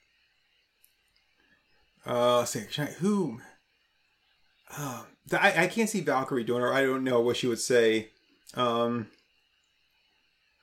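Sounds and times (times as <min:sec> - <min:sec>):
speech: 0:02.0 - 0:03.5, 0:04.7 - 0:09.2
person yawning: 0:04.7 - 0:05.1.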